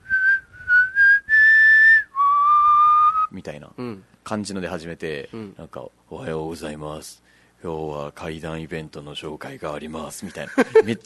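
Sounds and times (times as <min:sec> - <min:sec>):
person mouth-whistling an eerie tune: 0:00.0 - 0:03.3
speech: 0:03.4 - 0:11.0.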